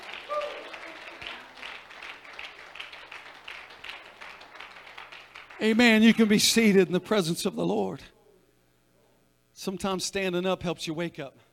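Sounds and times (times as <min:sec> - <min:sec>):
audience applause: 0:00.0 - 0:06.2
speech: 0:05.6 - 0:08.1, 0:09.6 - 0:11.5.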